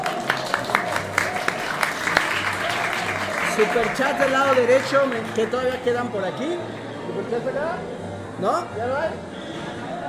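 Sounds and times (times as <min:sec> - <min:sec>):
small group clapping: 0:00.0 - 0:06.4
speech: 0:03.6 - 0:09.3.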